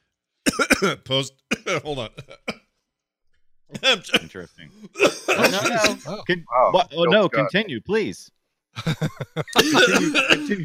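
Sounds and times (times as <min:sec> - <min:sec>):
person coughing after choking on tea: 0:00.5 - 0:01.0, 0:04.9 - 0:06.1, 0:09.6 - 0:10.6
speech: 0:00.8 - 0:02.5, 0:03.8 - 0:10.6
laughter: 0:08.8 - 0:10.6.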